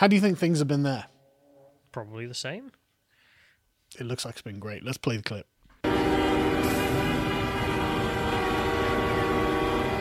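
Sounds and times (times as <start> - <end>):
speech: 0.0 - 1.1, 2.0 - 2.8, 3.9 - 6.2
truck horns honking: 5.8 - 9.9.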